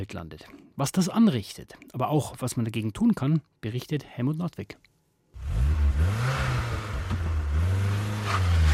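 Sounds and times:
speech: 0:00.0 - 0:04.9
car engine revving while accelerating hard from a standstill: 0:05.4 - 0:08.7.

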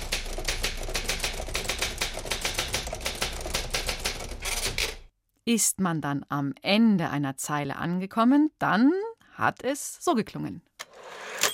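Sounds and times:
typewriter keys clattering: 0:00.0 - 0:05.1
speech: 0:05.5 - 0:10.7.

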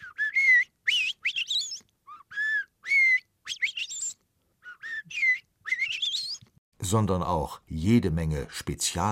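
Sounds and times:
Eurasian blackbird singing: 0:00.0 - 0:06.4
speech: 0:06.9 - 0:09.1.

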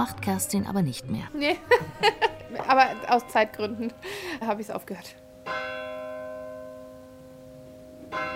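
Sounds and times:
speech: 0:00.0 - 0:05.2
laughter: 0:01.4 - 0:03.0
church bell striking the quarter hour: 0:02.4 - 0:04.0, 0:04.6 - 0:08.3.

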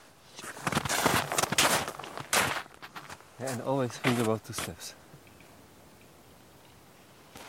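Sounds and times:
scuffing footsteps crunching on gritty ground: 0:00.3 - 0:04.3
speech: 0:03.5 - 0:05.0.

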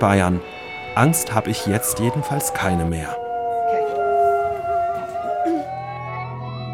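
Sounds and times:
speech: 0:00.0 - 0:03.2
several wolves howling in chorus: 0:00.4 - 0:06.7.

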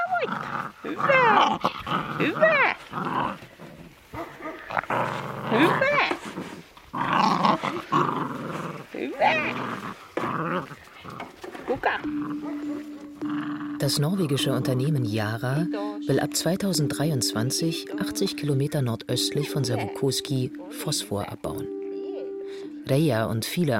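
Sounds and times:
husky puppies growling yipping and whining while playing: 0:00.0 - 0:13.8
speech: 0:00.2 - 0:03.5, 0:13.9 - 0:21.8, 0:22.9 - 0:23.7.

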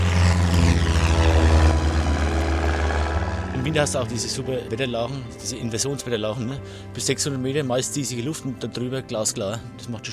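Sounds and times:
small propeller plane engine throttling up for takeoff: 0:00.0 - 0:05.4
speech: 0:03.7 - 0:10.1.

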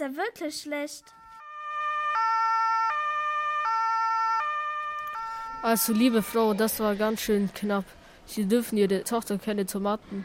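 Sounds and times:
speech: 0:00.0 - 0:01.2, 0:05.6 - 0:10.2
ambulance siren wailing in a two-tone pattern: 0:01.0 - 0:07.2.

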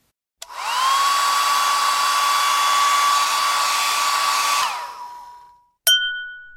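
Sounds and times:
hair dryer blowing: 0:00.4 - 0:05.6.

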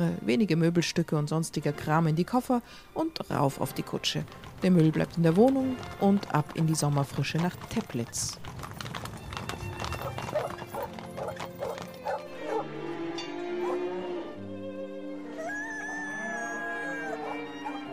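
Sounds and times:
speech: 0:00.0 - 0:08.6
horse hooves clip-clopping in a busy farmyard: 0:03.4 - 0:12.7
dog barking in short repeated bursts: 0:10.3 - 0:12.7, 0:13.6 - 0:13.8, 0:17.0 - 0:17.8
dog whimpering with high drawn-out whines: 0:13.6 - 0:13.8, 0:15.4 - 0:17.9.

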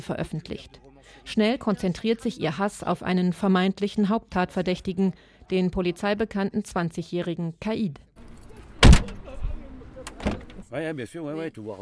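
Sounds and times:
speech: 0:00.0 - 0:08.1, 0:10.7 - 0:11.7
black taxi van door slamming: 0:08.8 - 0:09.3.

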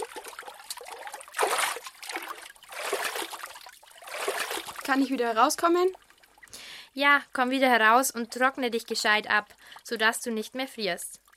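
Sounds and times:
water splashing as person submerges: 0:00.0 - 0:06.5
speech: 0:04.9 - 0:06.0, 0:07.0 - 0:11.2.

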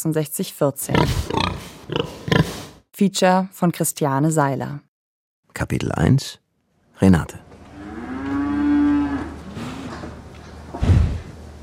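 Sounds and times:
speech: 0:00.0 - 0:04.9, 0:05.6 - 0:06.4, 0:07.0 - 0:07.5
black cow with white belly mooing: 0:07.6 - 0:10.1.

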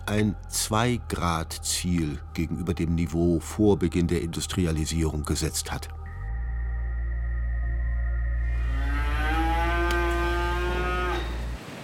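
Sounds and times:
constant low hum: 0:00.0 - 0:11.7
speech: 0:00.1 - 0:06.0
dairy cow mooing in a barn at Triesdorf: 0:08.5 - 0:11.6.

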